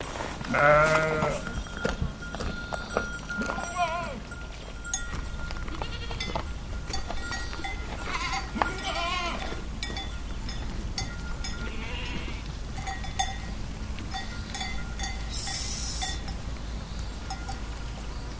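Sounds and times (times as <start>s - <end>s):
goats: 0.0s - 18.3s
sheep: 0.1s - 18.2s.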